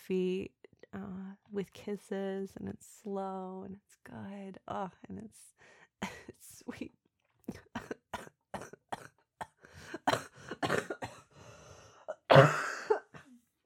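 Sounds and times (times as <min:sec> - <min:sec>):
speech: 0:00.1 - 0:07.6
sharp coughs: 0:07.8 - 0:11.3, 0:12.1 - 0:13.3.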